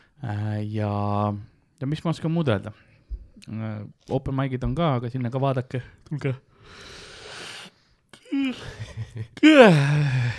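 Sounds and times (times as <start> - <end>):
speech: 0.2 - 7.0, 8.5 - 10.3
deep drawn-out yawn: 8.2 - 10.3.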